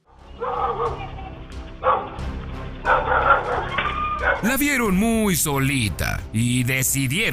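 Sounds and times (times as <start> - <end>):
guard dog barking roughly: 0.4 - 2.2, 2.8 - 4.4
speech: 4.4 - 7.3.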